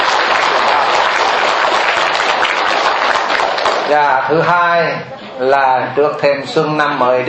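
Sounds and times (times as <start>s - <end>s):
crowd applauding: 0.0s - 4.2s
speech: 3.9s - 7.2s.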